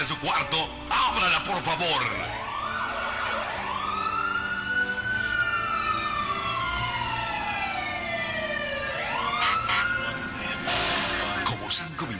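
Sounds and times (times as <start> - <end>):
speech: 0.0 - 2.5
fire truck siren wailing: 0.0 - 12.1.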